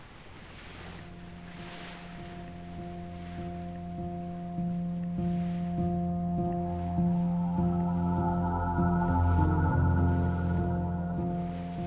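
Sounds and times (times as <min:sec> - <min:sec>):
boat engine droning on the sea: 0:00.0 - 0:11.8
rushing water on the sea: 0:00.0 - 0:11.8.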